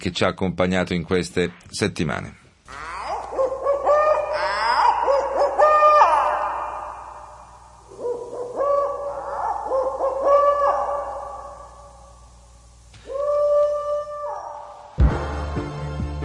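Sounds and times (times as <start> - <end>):
speech: 0.0 - 2.9
owl hooting: 2.7 - 15.0.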